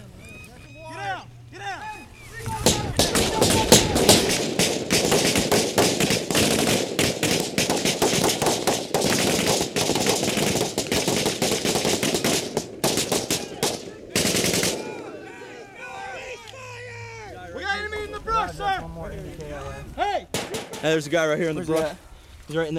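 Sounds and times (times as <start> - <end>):
people shouting: 0.0 - 6.2, 11.2 - 19.0
rapid gunfire during combat: 2.5 - 15.2, 20.3 - 20.9
speech: 20.9 - 22.7.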